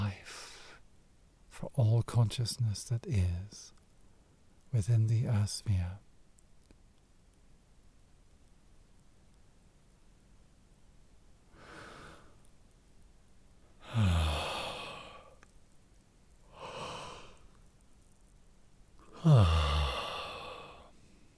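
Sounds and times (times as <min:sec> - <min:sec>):
speech: 0:01.7 - 0:03.8, 0:04.7 - 0:06.0, 0:19.2 - 0:19.7
person yawning: 0:13.8 - 0:15.4, 0:16.5 - 0:17.4, 0:19.1 - 0:20.9.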